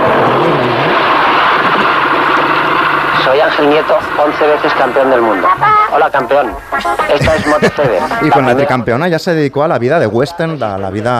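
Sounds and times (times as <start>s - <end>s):
racing motorcycle engine revving: 0.0s - 5.0s
speech: 3.3s - 11.1s
laughter: 6.8s - 8.8s.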